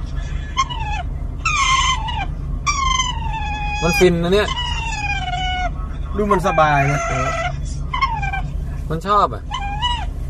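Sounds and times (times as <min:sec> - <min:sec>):
low rumble: 0:00.0 - 0:10.2
otter squealing while being scratched by a person: 0:00.5 - 0:08.6, 0:09.5 - 0:10.1
speech: 0:03.8 - 0:04.6, 0:06.2 - 0:07.4, 0:08.9 - 0:09.5.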